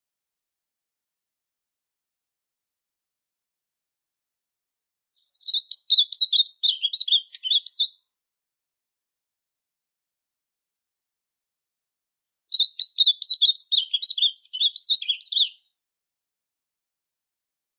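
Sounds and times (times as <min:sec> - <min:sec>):
Ultramarine grosbeak singing warbling phrases: 0:05.3 - 0:08.0, 0:12.5 - 0:15.7.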